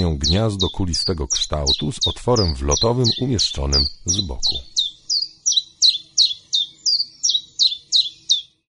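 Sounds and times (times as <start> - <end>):
speech: 0.0 - 4.8
common chiffchaff singing high chirpy notes: 0.0 - 8.6.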